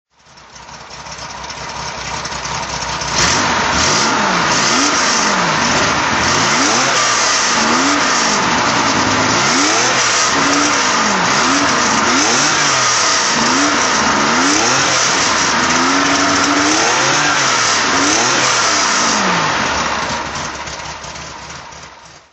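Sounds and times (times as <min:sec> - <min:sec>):
Porsche 911 24s rally car engine throttle: 0:01.2 - 0:22.1.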